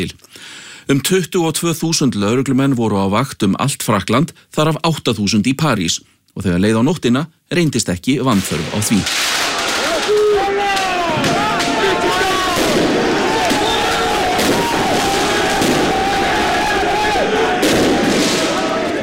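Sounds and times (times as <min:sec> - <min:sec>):
speech: 0:00.0 - 0:09.3
fireworks bangs during street celebrations: 0:08.3 - 0:19.0
large crowd roaring during street celebrations: 0:09.3 - 0:19.0.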